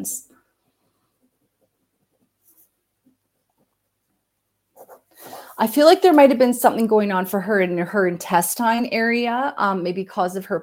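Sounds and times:
speech: 0:00.0 - 0:00.3, 0:04.8 - 0:10.6
pen scratching on paper as notes are handwritten: 0:04.8 - 0:05.8.

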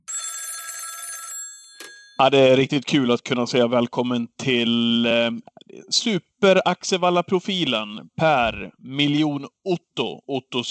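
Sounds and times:
telephone ringing with an electronic trill as a call is placed: 0:00.0 - 0:02.3
speech: 0:02.2 - 0:10.6.

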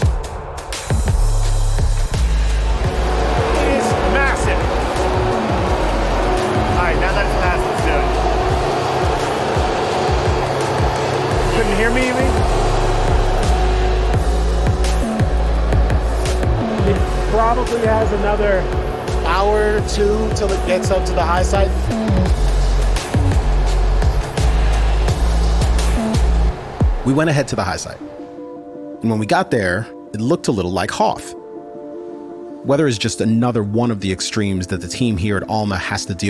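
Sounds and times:
truck engine droning as it drives uphill: 0:01.0 - 0:26.9
speech: 0:18.0 - 0:18.8, 0:19.7 - 0:22.0, 0:27.1 - 0:28.1, 0:29.0 - 0:31.4, 0:32.6 - 0:36.2.

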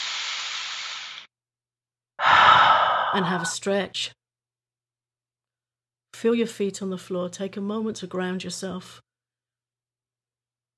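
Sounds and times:
deep breath released during a guided relaxation exercise: 0:00.0 - 0:01.3, 0:02.2 - 0:03.6
speech: 0:03.1 - 0:04.2, 0:06.2 - 0:09.1.

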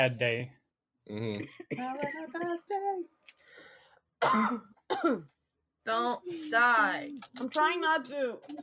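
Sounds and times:
speech: 0:00.0 - 0:03.4, 0:04.2 - 0:08.6
harsh loud coughs: 0:04.2 - 0:05.3.

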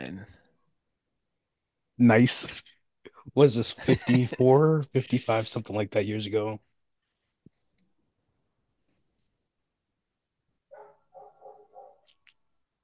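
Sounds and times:
speech: 0:02.0 - 0:02.7, 0:03.3 - 0:06.7
laughter: 0:03.6 - 0:04.8
dog barking sharply: 0:10.7 - 0:12.1.

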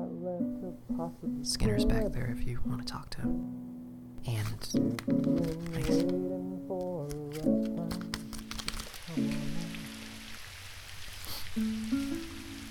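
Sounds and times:
speech: 0:01.0 - 0:08.1
steady rain: 0:08.4 - 0:12.6.

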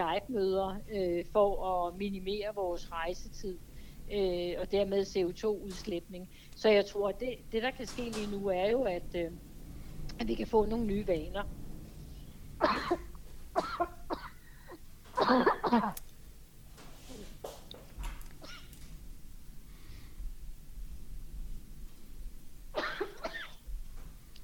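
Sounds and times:
speech: 0:00.0 - 0:09.5, 0:10.1 - 0:11.6, 0:12.6 - 0:14.0, 0:15.2 - 0:16.0
person coughing: 0:12.6 - 0:16.0, 0:18.4 - 0:18.7, 0:22.8 - 0:23.6.

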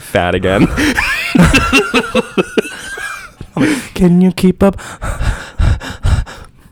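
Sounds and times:
heavy panting breaths of a person breathing hard: 0:00.0 - 0:01.2, 0:02.7 - 0:04.0, 0:04.6 - 0:06.6
speech: 0:00.1 - 0:02.6, 0:03.6 - 0:05.2
laughter: 0:00.5 - 0:03.9.

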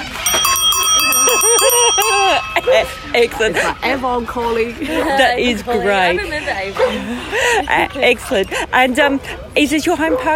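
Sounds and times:
loud bicycle bell ringing rapidly: 0:00.0 - 0:03.4
speech: 0:02.6 - 0:10.3.

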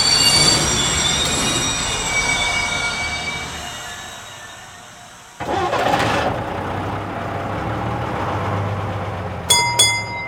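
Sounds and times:
high metallic train wheel squeal: 0:00.0 - 0:05.4
train rumbling on rails: 0:00.0 - 0:10.2
sharp metal clanks: 0:09.5 - 0:10.2.

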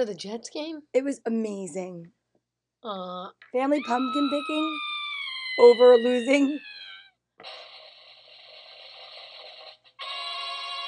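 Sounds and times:
speech: 0:00.0 - 0:02.2, 0:02.8 - 0:04.9, 0:05.6 - 0:06.8, 0:07.4 - 0:07.7
phone ringing with a bright electronic ringtone: 0:03.8 - 0:07.0, 0:09.9 - 0:10.8.

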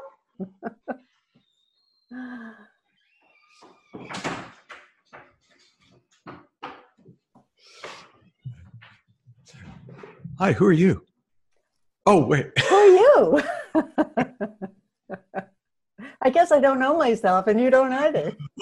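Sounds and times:
laughter: 0:00.0 - 0:01.0, 0:10.4 - 0:11.0, 0:12.1 - 0:15.4, 0:18.1 - 0:18.5
speech: 0:00.4 - 0:00.6, 0:10.4 - 0:11.1, 0:12.0 - 0:12.6, 0:13.2 - 0:13.9, 0:16.4 - 0:18.5
door opened to let a dog in or out: 0:03.4 - 0:04.8.

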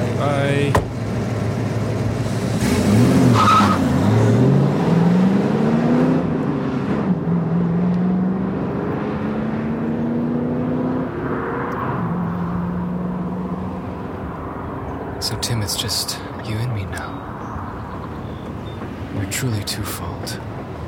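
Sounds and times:
car engine revving and accelerating hard: 0:00.0 - 0:14.1
tire squeal: 0:03.2 - 0:03.9
speech: 0:15.7 - 0:16.2, 0:19.4 - 0:20.5.

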